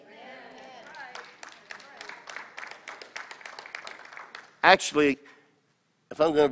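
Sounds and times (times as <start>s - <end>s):
church audience applause: 0.7s - 4.7s
speech: 4.6s - 5.3s, 6.1s - 6.5s.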